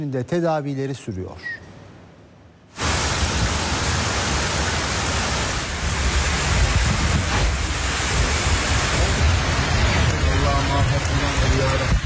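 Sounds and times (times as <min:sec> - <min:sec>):
speech: 0:00.0 - 0:01.7
floodwater from heavy rain rushing through a street in Gümüşler: 0:02.8 - 0:12.0.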